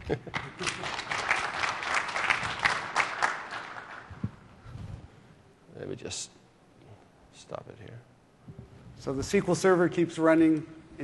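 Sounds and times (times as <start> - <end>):
speech: 0.1 - 0.8, 5.9 - 6.4, 7.5 - 8.1, 9.0 - 11.0
audience applause: 0.3 - 4.2.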